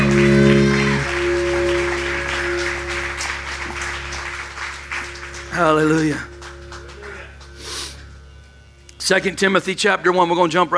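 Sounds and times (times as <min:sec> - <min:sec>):
crowd applause in a large room: 0:00.0 - 0:07.7
sustained organ chords: 0:00.0 - 0:10.7
speech: 0:05.7 - 0:06.3, 0:09.1 - 0:10.7.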